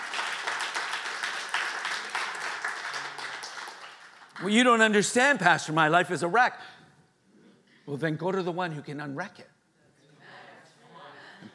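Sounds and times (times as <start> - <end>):
congregation clapping: 0.0 - 5.5
speech: 4.4 - 6.8, 7.9 - 9.5.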